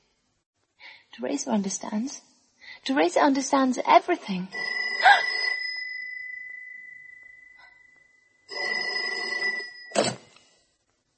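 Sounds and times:
speech: 1.2 - 5.1
old-fashioned telephone bell ringing: 4.6 - 10.3
clunk: 9.9 - 10.4.

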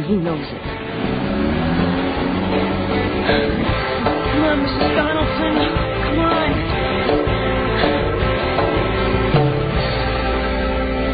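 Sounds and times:
car engine rumbling while backing out of a garage: 0.0 - 11.1
speech: 0.1 - 1.1, 3.3 - 3.7, 4.5 - 6.9.

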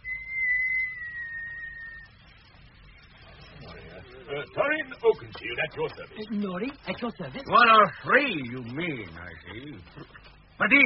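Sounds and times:
person whistling one long high note: 0.0 - 2.1
speech: 4.3 - 10.8.

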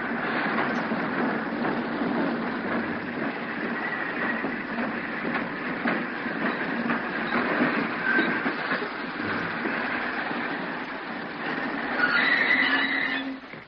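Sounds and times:
train rumbling along: 0.0 - 13.6
train brake squeals as it slows to a stop at Lobok Lingau: 7.2 - 8.5, 11.8 - 13.6.

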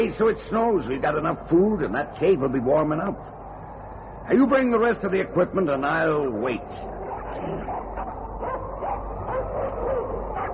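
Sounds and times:
speech: 0.0 - 3.4, 4.3 - 7.8
pack of sled dogs barking and yipping: 6.8 - 10.5.

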